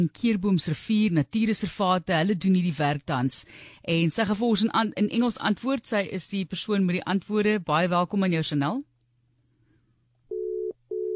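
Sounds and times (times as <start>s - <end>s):
speech: 0.0s - 8.9s
telephone tone after a dropped phone call: 10.3s - 11.1s.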